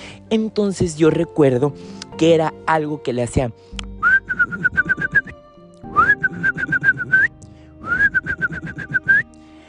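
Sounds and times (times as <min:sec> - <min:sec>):
speech: 0:00.3 - 0:04.9
person whistling an imitation of a bird-song clock chime: 0:04.0 - 0:09.3.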